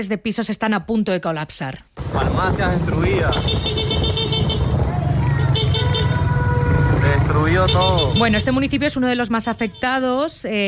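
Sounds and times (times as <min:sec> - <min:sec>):
speech: 0:00.0 - 0:04.1, 0:07.3 - 0:10.6
engine and road rumble of street traffic from inside a moving car in La Guaira: 0:02.0 - 0:10.6
horn honking: 0:02.2 - 0:10.5.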